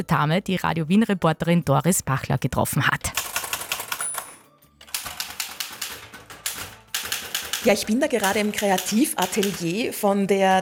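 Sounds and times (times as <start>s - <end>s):
speech: 0.0s - 3.2s, 7.6s - 10.6s
typing on a manual Erika typewriter at a desk: 3.0s - 10.0s.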